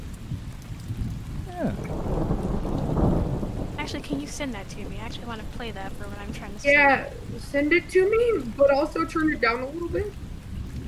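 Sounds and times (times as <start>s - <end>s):
deep rolling thunder: 0.0s - 10.8s
steady rainfall: 0.0s - 10.8s
speech: 1.6s - 1.9s, 3.9s - 10.2s.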